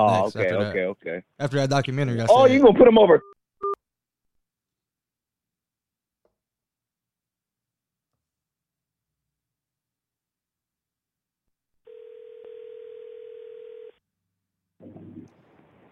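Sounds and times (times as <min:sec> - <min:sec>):
speech: 0:00.0 - 0:03.4
telephone dial tone from a dropped phone call: 0:11.9 - 0:14.0.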